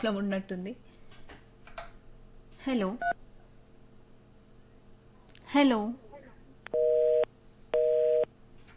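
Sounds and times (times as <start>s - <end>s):
speech: 0.0s - 0.9s, 2.6s - 3.3s, 5.5s - 6.0s
telephone busy tone beeps after a dropped call: 6.7s - 8.3s.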